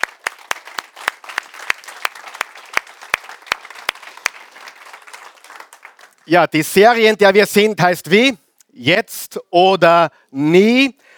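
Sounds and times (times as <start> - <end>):
audience applause: 0.0 - 6.3
speech: 6.3 - 11.0.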